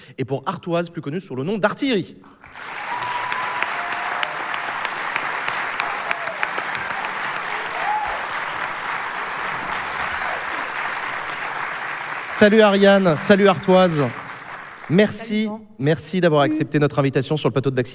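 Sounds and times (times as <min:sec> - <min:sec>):
speech: 0:00.1 - 0:02.8, 0:12.4 - 0:14.2, 0:14.9 - 0:17.9
audience applause: 0:02.4 - 0:15.3
faint whistles and cheers from audience: 0:02.5 - 0:11.0.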